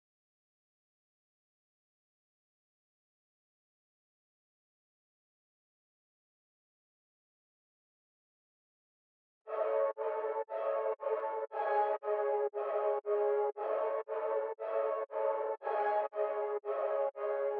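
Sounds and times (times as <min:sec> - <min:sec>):
117 BPM C# minor ghost pad melody loop: 0:09.5 - 0:17.5.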